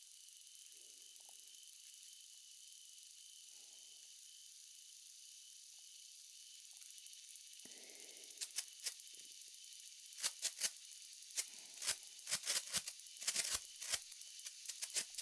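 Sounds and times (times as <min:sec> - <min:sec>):
sparkler firework crackling and spitting: 0:08.4 - 0:09.0, 0:10.2 - 0:15.2.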